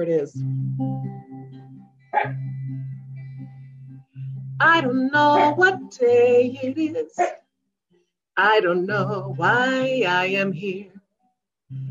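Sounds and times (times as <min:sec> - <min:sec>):
speech: 0:00.0 - 0:02.5, 0:04.6 - 0:07.4, 0:08.4 - 0:10.9
dog barking: 0:02.2 - 0:02.4, 0:07.2 - 0:07.4.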